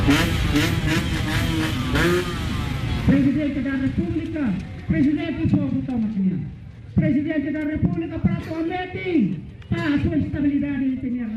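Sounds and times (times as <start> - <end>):
scooters revving and backfiring loudly in an outdoor crowd: 0.0 - 5.2
speech: 0.1 - 2.4, 3.1 - 11.3.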